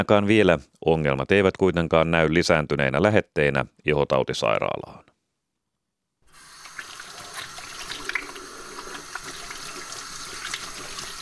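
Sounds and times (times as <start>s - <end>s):
speech: 0.0s - 5.1s
hands washing under running tap water: 6.3s - 11.2s
tap running into a sink: 6.6s - 11.2s.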